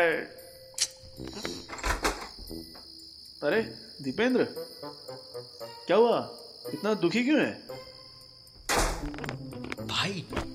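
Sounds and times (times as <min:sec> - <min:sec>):
speech: 0:00.0 - 0:00.4, 0:01.2 - 0:01.8, 0:03.4 - 0:07.9
door rattling and shuffling as it swings: 0:01.5 - 0:02.6, 0:08.6 - 0:09.3.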